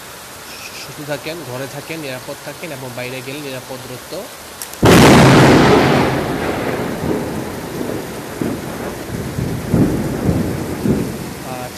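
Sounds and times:
steady rain: 0.0s - 11.7s
speech: 0.9s - 4.5s
thunder during a thunderstorm: 4.8s - 11.7s.

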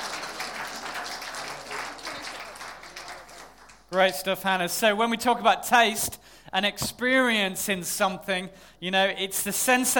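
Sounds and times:
crowd applauding participants of a taste test: 0.0s - 4.0s
speech: 3.9s - 9.9s.

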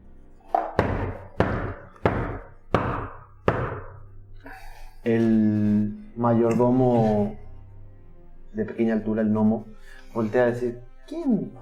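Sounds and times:
heavy knocking on a door: 0.6s - 4.0s
speech: 5.0s - 5.5s, 6.2s - 7.4s, 8.6s - 11.6s.

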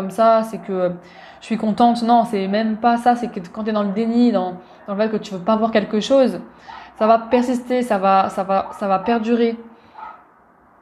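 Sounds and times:
speech: 0.0s - 9.7s
low steady noise: 0.0s - 10.8s
dog barking: 6.7s - 6.9s, 8.6s - 8.9s, 9.9s - 10.3s.

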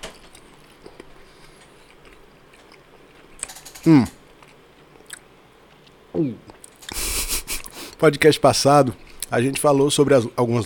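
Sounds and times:
person chewing and biting food with soft crunches: 0.1s - 7.8s
speech: 3.8s - 4.2s, 6.2s - 6.5s, 8.0s - 10.6s
laughter: 7.0s - 7.7s.

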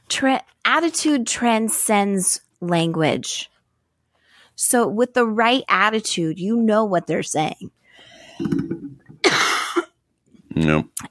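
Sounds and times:
speech: 0.1s - 3.5s, 4.6s - 7.8s, 10.6s - 11.0s
person coughing: 8.4s - 10.0s.

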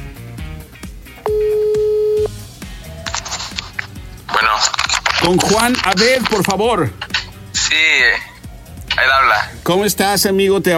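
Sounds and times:
rhythmic music bed: 0.0s - 10.7s
telephone call tone: 1.2s - 2.4s
speech: 5.2s - 8.3s, 9.0s - 10.7s.

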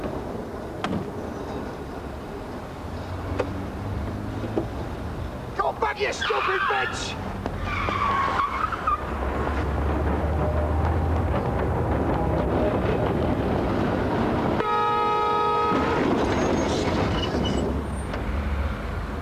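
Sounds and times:
tram roaring: 0.0s - 19.1s
speech: 6.0s - 7.3s
tram wheels grinding and screeching: 6.1s - 13.9s, 15.6s - 18.4s
tram warning horn: 14.6s - 16.2s.

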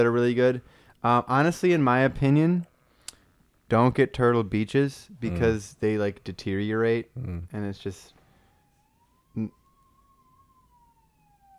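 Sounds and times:
speech: 0.0s - 2.7s, 3.7s - 8.2s, 9.4s - 9.6s
police car siren wailing: 7.6s - 11.5s.

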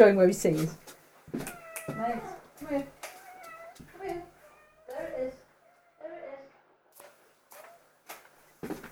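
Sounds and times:
speech: 0.0s - 3.0s
cat meowing: 1.4s - 6.2s.

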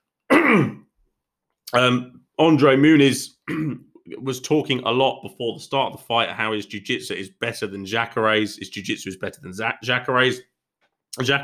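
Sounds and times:
throat clearing: 0.3s - 0.9s, 3.5s - 4.1s
speech: 0.5s - 0.8s, 1.7s - 10.5s, 11.1s - 11.4s.

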